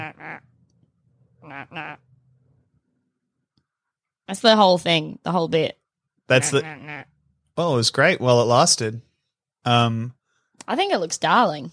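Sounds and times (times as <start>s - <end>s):
small toy duck quacking: 0.0s - 0.4s, 1.4s - 2.0s, 6.3s - 7.0s
speech: 1.5s - 2.0s, 4.3s - 11.7s.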